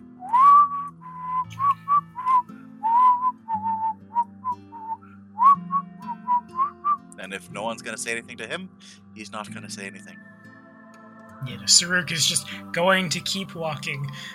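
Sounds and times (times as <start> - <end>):
soft low musical background: 0.0 - 14.3
person whistling a casual wandering tune: 0.1 - 7.1
speech: 7.3 - 10.2, 11.4 - 14.3.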